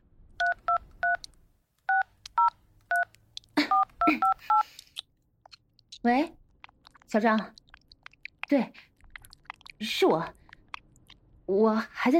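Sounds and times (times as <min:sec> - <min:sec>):
mobile phone keypad dialing tones: 0:00.4 - 0:01.2, 0:01.9 - 0:03.1, 0:03.7 - 0:04.6
speech: 0:06.0 - 0:06.4, 0:07.1 - 0:07.6, 0:08.5 - 0:08.8, 0:09.8 - 0:10.4, 0:11.5 - 0:12.1.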